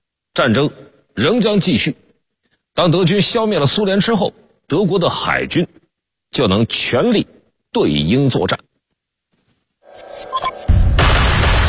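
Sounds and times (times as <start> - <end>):
speech: 0.4 - 2.0, 2.8 - 8.7
artillery fire from massed cannons and rocket launchers opening a wartime barrage: 10.3 - 11.6.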